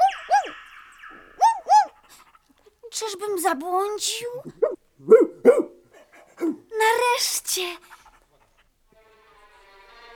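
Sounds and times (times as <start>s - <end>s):
speech: 3.0s - 4.8s, 6.4s - 7.9s
dog barking: 4.6s - 6.6s.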